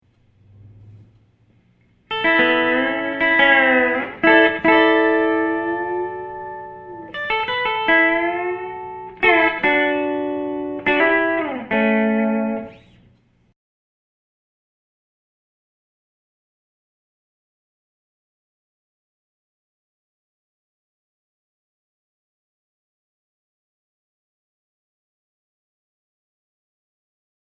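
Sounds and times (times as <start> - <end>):
country steel guitar: 2.1 - 13.1.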